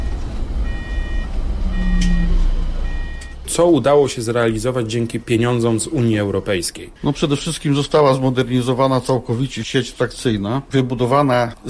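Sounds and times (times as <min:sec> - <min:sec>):
high electronic beeps of an electric trolleybus: 0:00.0 - 0:03.5
low hum: 0:00.0 - 0:03.8
electric trolleybus starting off in battery driving mode: 0:00.0 - 0:04.3
short sharp high sound: 0:01.7 - 0:03.0
speech: 0:03.5 - 0:11.6.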